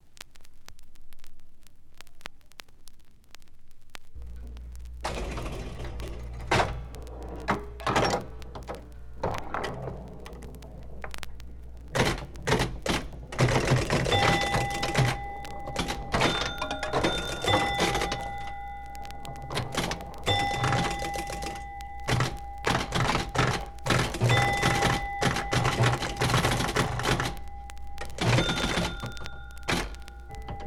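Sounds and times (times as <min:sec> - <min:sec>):
pinball machine: 0:05.0 - 0:11.1, 0:11.9 - 0:18.6, 0:19.4 - 0:27.4, 0:28.0 - 0:30.6.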